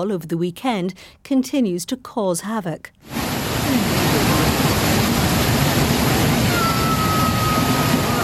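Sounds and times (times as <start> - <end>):
speech: 0.0 - 4.5
floodwater from a tropical storm rushing through flooded communities: 3.0 - 8.2.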